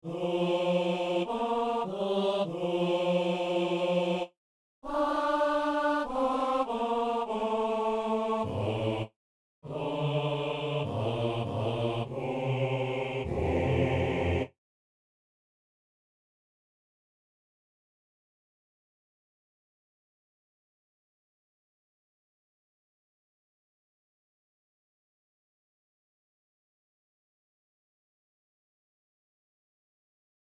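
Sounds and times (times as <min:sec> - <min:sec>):
four voices singing with bass: 0:00.0 - 0:14.6.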